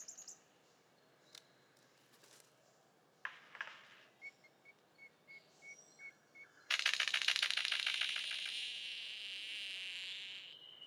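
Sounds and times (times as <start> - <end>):
golden bowerbird Prionodura newtoniana rattling and buzzing: 6.7 - 10.4.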